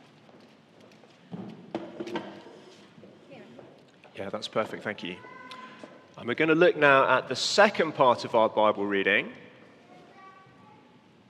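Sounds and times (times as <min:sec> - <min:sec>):
chair scraping across a hard floor: 0:01.4 - 0:03.3
speech: 0:04.2 - 0:05.4, 0:06.2 - 0:09.4.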